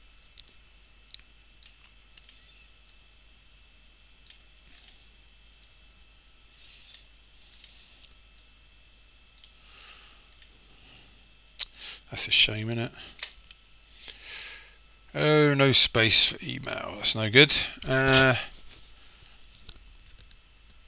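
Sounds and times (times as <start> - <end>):
computer mouse clicks: 0.2 - 3.0, 4.2 - 5.0, 6.7 - 8.5, 9.4 - 9.6, 10.3 - 10.5
speech: 12.1 - 13.3, 15.2 - 18.5.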